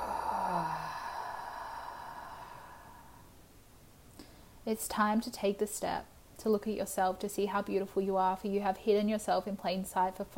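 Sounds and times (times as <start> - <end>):
voiced sigh: 0.0 - 3.3
deep breath in and out: 0.0 - 3.4
speech: 4.7 - 10.3.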